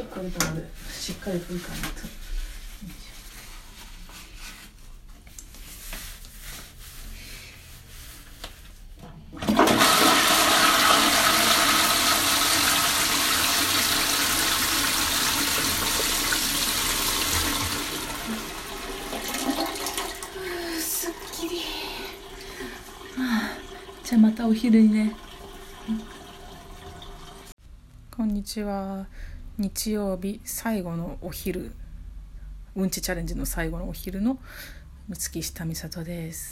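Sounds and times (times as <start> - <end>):
speech: 0.2 - 2.2, 2.8 - 3.0, 24.6 - 25.2, 28.4 - 31.8, 32.8 - 36.5
toilet flushing: 9.2 - 27.6
toilet refill water gurgling and trickling: 12.8 - 27.5.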